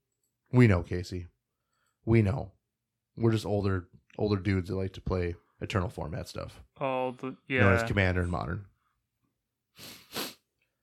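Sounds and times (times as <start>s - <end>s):
speech: 0.5s - 1.4s, 2.0s - 2.6s, 3.2s - 8.7s, 9.8s - 10.2s
nasal sniffles: 9.8s - 10.5s.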